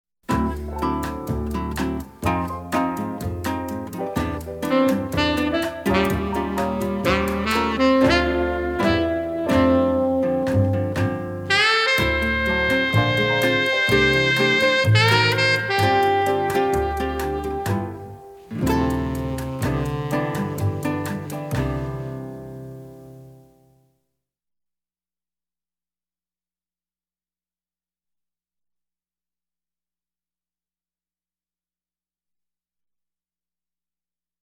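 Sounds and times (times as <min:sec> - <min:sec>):
soft guitar: 0:00.3 - 0:23.8.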